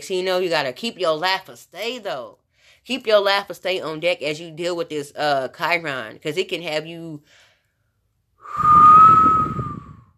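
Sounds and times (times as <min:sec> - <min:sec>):
speech: 0:00.0 - 0:07.4, 0:08.5 - 0:09.0
single sustained human whistle with breathy air: 0:08.4 - 0:10.1.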